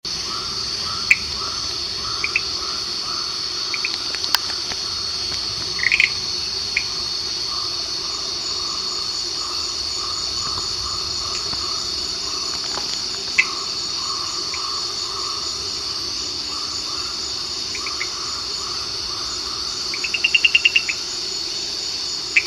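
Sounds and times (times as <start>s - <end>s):
Kurixalus chaseni Frilled Tree Frog calling in Johor Peninsular Malaysia: 0.1s - 22.4s.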